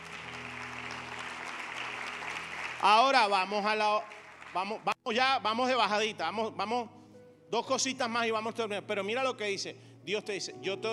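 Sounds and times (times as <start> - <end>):
church congregation applauding: 0.0 - 5.0
speech: 2.8 - 10.9.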